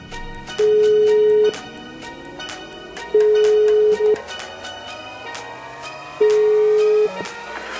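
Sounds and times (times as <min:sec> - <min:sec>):
ringback tone of an outgoing telephone call: 0:00.6 - 0:01.6, 0:03.1 - 0:04.3, 0:06.2 - 0:07.2.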